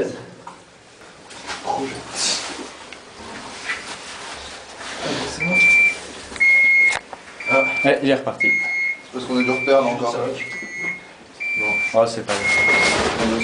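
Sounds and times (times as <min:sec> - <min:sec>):
gas detector alarm beeping at alarm level one: 0:05.4 - 0:13.4
speech: 0:07.8 - 0:10.6, 0:11.6 - 0:13.4.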